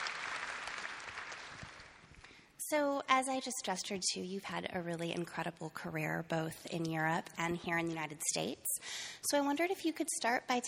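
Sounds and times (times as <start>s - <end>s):
audience applause: 0.0s - 2.3s
speech: 2.7s - 10.6s.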